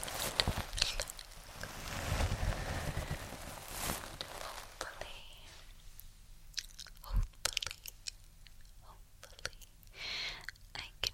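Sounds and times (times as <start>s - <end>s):
brushing: 0.0s - 5.6s
quiet low hum: 0.0s - 11.1s.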